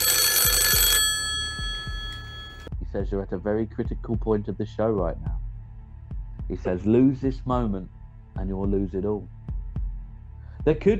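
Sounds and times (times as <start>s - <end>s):
telephone ringing loudly: 0.0s - 2.7s
speech: 3.0s - 5.4s, 6.5s - 9.4s, 10.6s - 10.9s.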